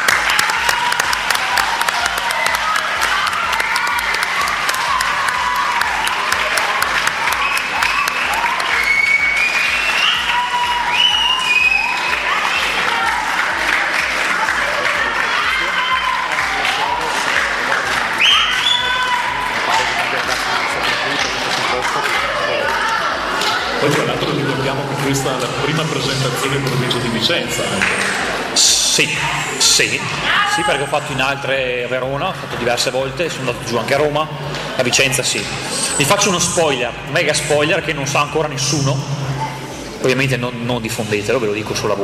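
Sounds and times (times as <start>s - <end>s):
large audience applause: 0.0s - 28.6s
scattered cheers: 0.0s - 32.2s
speech: 29.0s - 39.2s, 40.1s - 42.0s.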